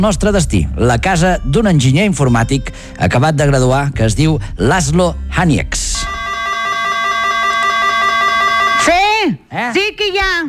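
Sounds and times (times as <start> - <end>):
speech: 0.0 - 6.0, 9.5 - 10.4
loud electronic doorbell buzzer with a fast pulsing rhythm: 6.0 - 8.9.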